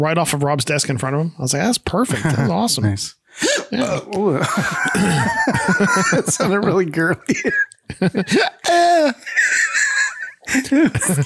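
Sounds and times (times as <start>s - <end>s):
speech: 0.0s - 9.4s, 10.5s - 11.2s
person hiccuping: 3.4s - 4.2s
laughter: 4.2s - 11.2s.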